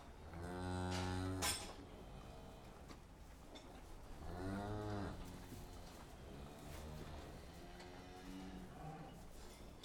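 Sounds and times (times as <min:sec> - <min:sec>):
cow mooing: 0:00.2 - 0:02.9, 0:04.2 - 0:09.2.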